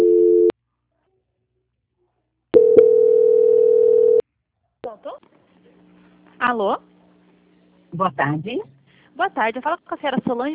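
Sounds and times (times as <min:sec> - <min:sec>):
telephone tone during a call transfer at a bank's quality-control line: 0:00.0 - 0:00.5, 0:02.6 - 0:04.2
speech: 0:06.4 - 0:06.9, 0:07.9 - 0:10.5.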